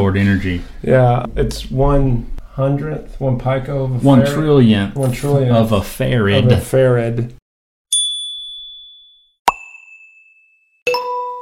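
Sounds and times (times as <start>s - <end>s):
speech: 0.1s - 7.4s
phone notification chime: 7.9s - 11.3s.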